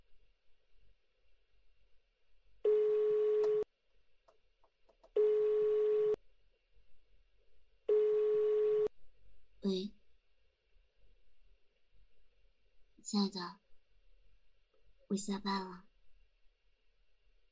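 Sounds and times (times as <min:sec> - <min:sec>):
telephone ringback tone beeps while a call connects: 0:02.7 - 0:03.6, 0:05.2 - 0:06.2, 0:07.9 - 0:08.9
speech: 0:13.1 - 0:13.6, 0:15.1 - 0:15.9.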